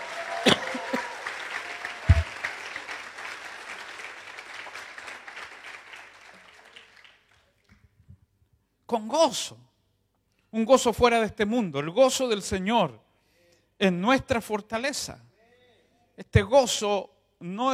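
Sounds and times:
crowd cheering and shouting: 0:00.0 - 0:02.5
crowd applauding: 0:00.0 - 0:07.9
speech: 0:08.9 - 0:09.7, 0:10.5 - 0:13.0, 0:13.8 - 0:15.3, 0:16.2 - 0:17.7.

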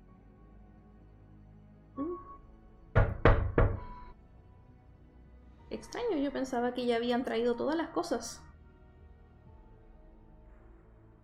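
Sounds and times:
firm knocking on a door: 0:02.9 - 0:04.0
speech: 0:05.8 - 0:08.5.

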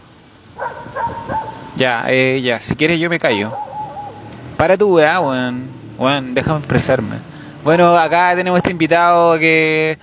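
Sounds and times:
dog barking: 0:00.6 - 0:01.8, 0:03.4 - 0:04.3
speech: 0:01.8 - 0:03.6, 0:04.6 - 0:10.0.

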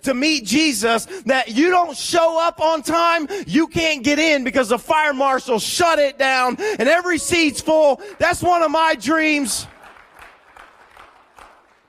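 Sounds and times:
speech: 0:00.0 - 0:09.7
church audience applauding during a service: 0:07.4 - 0:11.8.

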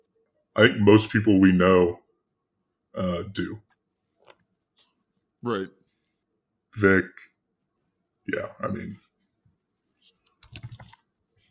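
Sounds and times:
speech: 0:00.6 - 0:02.0, 0:03.0 - 0:03.6, 0:05.4 - 0:05.8, 0:06.8 - 0:07.3, 0:08.3 - 0:09.1
typing on a computer keyboard: 0:10.2 - 0:11.1.

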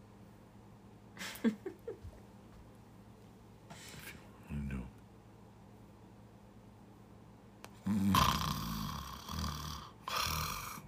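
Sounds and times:
speech: 0:01.4 - 0:01.7
loud rattling snores: 0:07.8 - 0:10.8.

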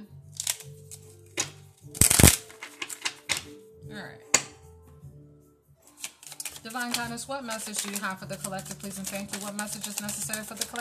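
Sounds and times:
tarot cards being shuffled: 0:00.3 - 0:03.5, 0:05.9 - 0:10.7
speech: 0:06.7 - 0:10.7.

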